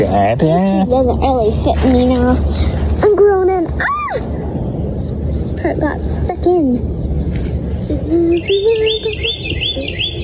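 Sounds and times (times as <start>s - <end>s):
speech: 0.0s - 3.1s, 3.7s - 4.4s, 5.6s - 7.0s, 7.9s - 10.1s
low rumble: 0.0s - 10.2s
baby bird chirping: 6.9s - 10.2s.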